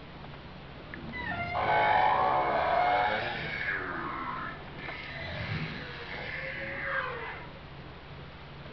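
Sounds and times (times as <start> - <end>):
whale calls with tonal moans and squealing sweeps: 1.0 - 7.6.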